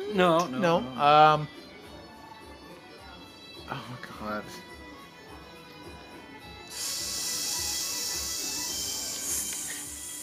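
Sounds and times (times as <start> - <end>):
speech: 0.1 - 1.6, 3.7 - 4.7
person hissing like a snake: 6.7 - 10.2.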